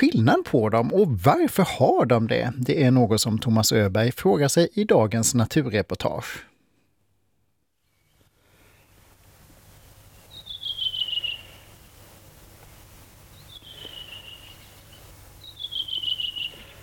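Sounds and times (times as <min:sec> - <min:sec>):
speech: 0:00.0 - 0:06.5
redwing singing: 0:10.3 - 0:11.8, 0:13.4 - 0:16.8.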